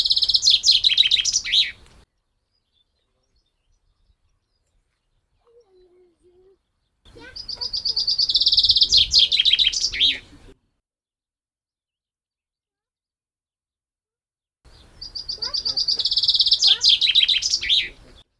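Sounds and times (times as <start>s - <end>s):
common chaffinch Fringilla coelebs song: 0.0s - 10.6s, 14.7s - 18.3s.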